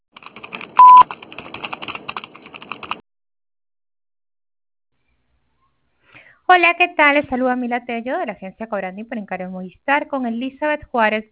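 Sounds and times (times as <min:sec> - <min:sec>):
louder steady telephone beep: 0:00.8 - 0:01.0
telephone keypad-style beeps before voicemail message: 0:00.8 - 0:01.1
speech: 0:06.5 - 0:11.3.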